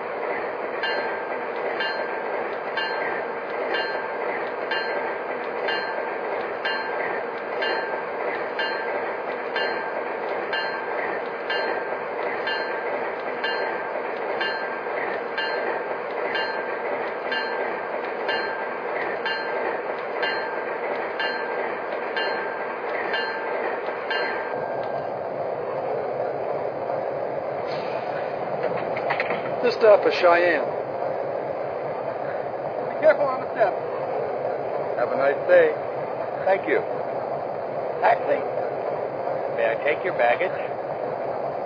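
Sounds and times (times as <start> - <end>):
train wheels clacking over rail joints: 0.0 - 26.7, 27.6 - 30.6
passenger train rumbling along track: 0.0 - 41.6
speech: 30.0 - 30.7, 35.5 - 35.8, 36.4 - 36.9, 39.8 - 40.8.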